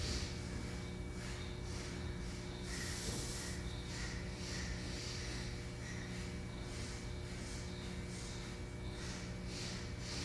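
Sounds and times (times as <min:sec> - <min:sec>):
low constant hum: 0:00.0 - 0:10.2
short sharp nasal sniffs in a breathing exercise: 0:02.6 - 0:10.2.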